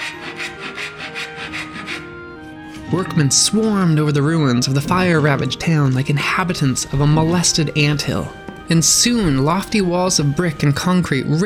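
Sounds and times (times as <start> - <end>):
hand saw rasping through wood: 0.0 - 3.0
speech: 2.9 - 11.4.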